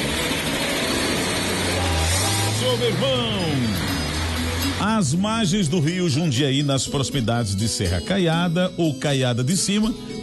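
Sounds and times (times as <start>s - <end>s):
Chevrolet Chevette car engine started and revved: 0.0s - 5.6s
speech: 2.8s - 4.0s, 4.8s - 10.2s.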